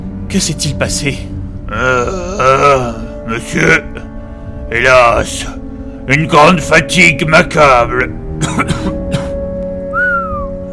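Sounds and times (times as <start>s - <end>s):
speech: 0.3s - 2.6s, 3.3s - 4.0s, 4.7s - 9.0s
person whistling in astonishment: 9.9s - 10.6s.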